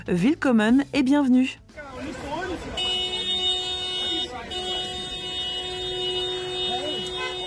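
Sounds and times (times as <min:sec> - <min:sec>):
speech: 0:00.0 - 0:02.2
car horns honking from stopped cars in traffic: 0:01.8 - 0:07.4.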